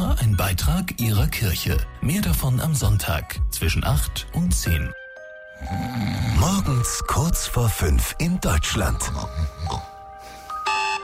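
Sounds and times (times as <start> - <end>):
speech: 0.5 - 5.0, 5.6 - 9.9
alarm clock ringing with a bright electronic tone: 10.5 - 11.0.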